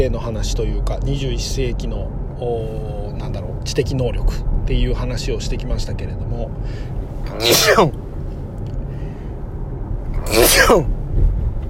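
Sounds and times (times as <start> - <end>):
speech: 0.0 - 8.0, 10.3 - 11.0
low hum: 0.0 - 11.6
person sneezing from autumn pollen allergy: 7.3 - 8.0, 10.2 - 10.9.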